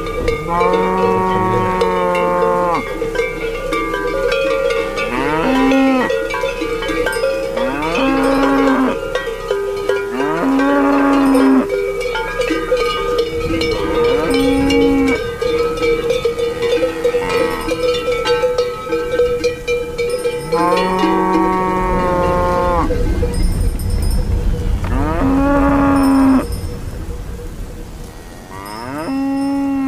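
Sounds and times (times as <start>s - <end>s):
cowbells clanking: 0.0s - 29.8s
cattle mooing: 0.3s - 2.9s, 5.0s - 6.2s, 7.6s - 9.0s, 10.1s - 11.7s, 13.0s - 19.5s, 20.4s - 23.5s, 24.8s - 26.5s, 28.1s - 29.8s.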